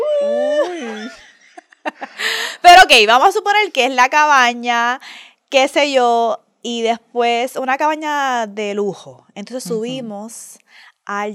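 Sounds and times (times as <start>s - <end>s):
person mimicking wolf noises: 0.0s - 1.0s
person giggling softly: 0.3s - 2.3s
speech: 2.9s - 11.3s.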